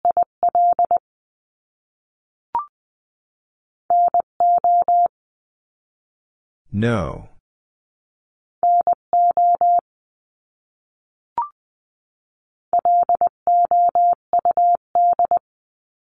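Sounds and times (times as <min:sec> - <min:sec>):
Morse code beeps in a steady mid-pitched tone: 0:00.1 - 0:01.0, 0:03.9 - 0:05.1, 0:08.6 - 0:09.8, 0:12.8 - 0:15.4
speech: 0:06.7 - 0:07.3.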